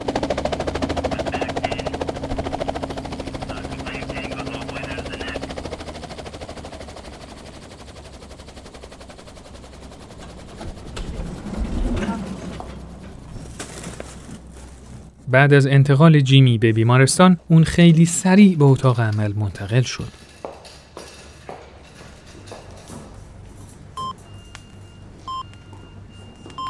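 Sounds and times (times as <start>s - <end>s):
helicopter rotor chopping: 0.0s - 24.2s
helicopter low engine drone: 0.0s - 26.6s
speech: 15.3s - 20.2s.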